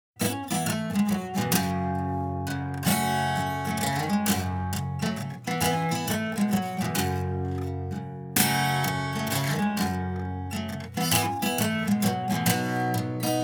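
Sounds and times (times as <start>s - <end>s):
acoustic guitar: 0.2s - 13.4s.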